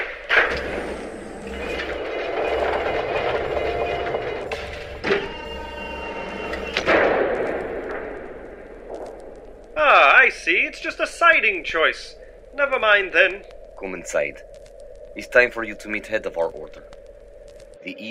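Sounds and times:
heavy wooden monastery doors sliding open mechanically with a rumbling grind: 0.2 - 7.4
speech: 10.7 - 14.6, 15.2 - 17.0, 17.8 - 18.0.

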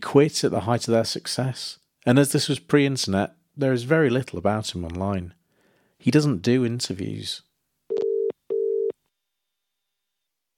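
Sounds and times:
speech: 0.1 - 5.4, 6.0 - 7.5
telephone double-ring tone while a call waits to connect: 7.9 - 9.0.

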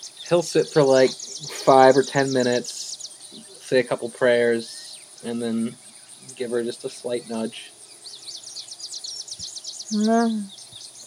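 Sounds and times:
birds chirping at dawn: 0.0 - 11.0
short low voice-like sound: 0.3 - 7.7
speech: 0.3 - 7.8, 9.9 - 10.6.

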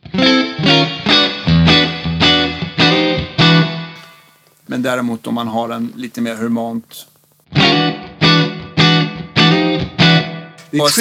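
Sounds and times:
electric guitar chords through reverb pedal with shimmering tail: 0.0 - 4.2, 7.5 - 11.0
speech: 4.7 - 7.1, 10.7 - 11.0.

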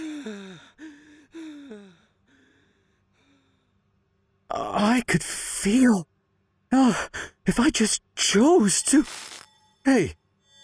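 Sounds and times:
heavy labored breathing with gasp-like tones: 0.0 - 3.6
speech: 0.2 - 0.6, 5.0 - 6.1, 6.7 - 10.2.

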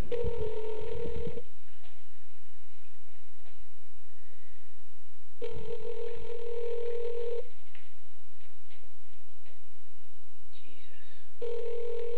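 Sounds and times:
telephone ringing out over the line: 0.1 - 1.4, 5.4 - 7.5, 11.4 - 12.1.

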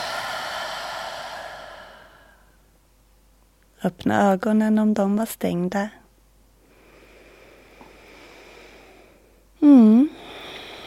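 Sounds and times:
slow deep breathy exhale: 0.0 - 2.7, 6.6 - 10.8
speech: 3.8 - 6.0.

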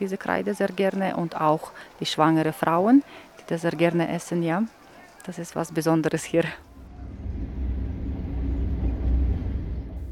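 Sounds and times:
speech: 0.0 - 6.7
passenger train rolling along tracks: 6.7 - 10.1.

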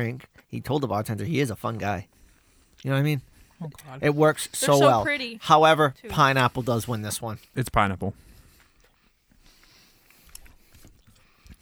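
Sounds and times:
speech: 0.0 - 2.2, 2.8 - 8.3
quiet chewing on a snack: 8.4 - 11.5.

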